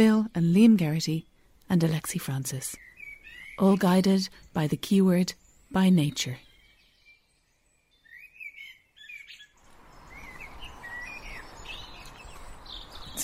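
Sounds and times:
speech: 0.0s - 2.9s, 3.6s - 6.5s
steady outdoor hiss: 0.0s - 13.2s
birds chirping and whistling in a dawn chorus during a cold snap: 2.8s - 4.5s, 6.3s - 13.2s.

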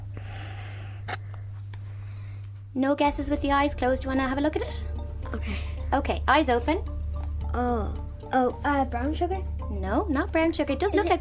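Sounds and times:
steady low electrical hum: 0.0s - 11.1s
person sniffing a yellowy-brown powder: 0.2s - 1.3s
speech: 2.8s - 11.1s.

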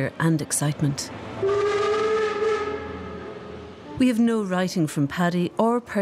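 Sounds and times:
speech: 0.0s - 1.8s, 4.0s - 5.9s
train whistle: 1.4s - 3.6s.

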